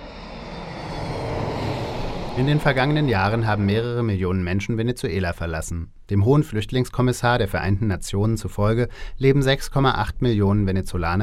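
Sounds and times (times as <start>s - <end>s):
airplanes roaring low over a house beside El Alto airport in Bolivia: 0.0s - 4.5s
speech: 2.4s - 11.2s.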